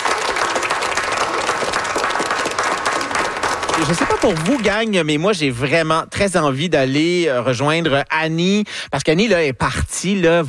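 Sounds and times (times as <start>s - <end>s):
audience applauding: 0.0s - 5.1s
speech: 3.8s - 10.4s.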